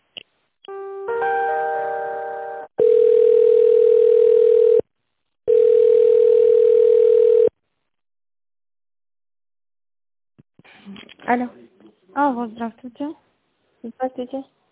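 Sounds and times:
telephone line beep while a call is transferred: 0:02.8 - 0:04.8, 0:05.5 - 0:07.5
speech: 0:11.3 - 0:11.6, 0:12.2 - 0:13.2, 0:13.8 - 0:14.6.

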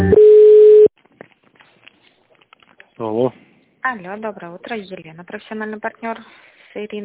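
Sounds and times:
pure beep: 0:00.1 - 0:00.9
telephone line tones during a call transfer: 0:00.1 - 0:00.9
speech: 0:03.9 - 0:07.0.

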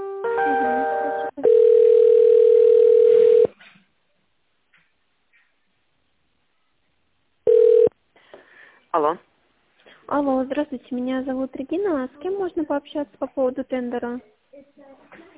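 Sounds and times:
telephone connecting tone while a call is transferred: 0:00.5 - 0:03.5, 0:07.5 - 0:07.9
speech: 0:09.0 - 0:09.3, 0:10.1 - 0:15.0.

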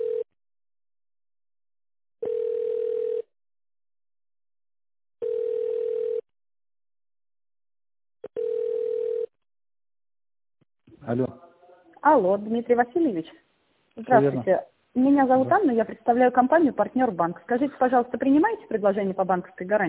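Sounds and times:
telephone line tone while a call is being transferred: 0:00.0 - 0:00.3, 0:02.2 - 0:03.3, 0:05.2 - 0:06.2, 0:08.3 - 0:09.3
speech: 0:11.1 - 0:11.4, 0:12.0 - 0:13.4, 0:14.0 - 0:19.8.

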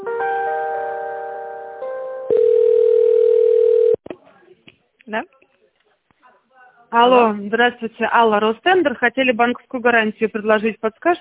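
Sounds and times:
telephone ringing tone while a call is transferred: 0:02.3 - 0:04.0
speech: 0:05.1 - 0:05.4, 0:06.9 - 0:11.1.

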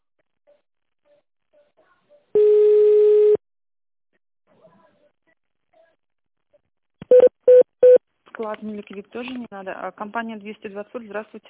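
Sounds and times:
long steady telephone beep: 0:02.4 - 0:03.4, 0:07.1 - 0:08.0
speech: 0:08.4 - 0:11.4.

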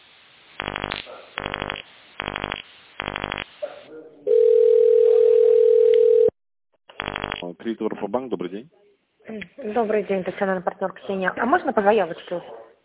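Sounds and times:
steady loud ringing tone on the phone line: 0:04.3 - 0:06.4
speech: 0:07.7 - 0:12.6.

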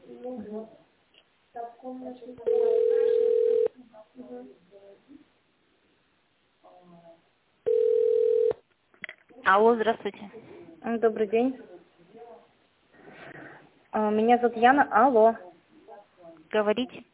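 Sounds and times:
speech: 0:01.9 - 0:02.6, 0:09.5 - 0:11.7, 0:14.0 - 0:15.4, 0:16.5 - 0:17.1
voices talking over a narrow phone line: 0:02.4 - 0:03.8
long flat telephone tones while a call is being transferred: 0:02.5 - 0:03.8, 0:07.6 - 0:08.6.

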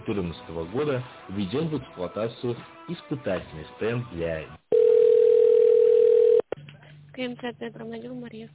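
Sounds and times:
speech: 0:00.1 - 0:04.6, 0:07.2 - 0:08.5
telephone line tone during call transfer: 0:04.7 - 0:06.4.

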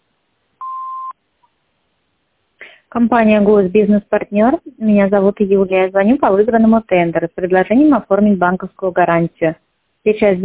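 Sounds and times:
answering machine beep: 0:00.6 - 0:01.1
speech: 0:02.9 - 0:10.4.

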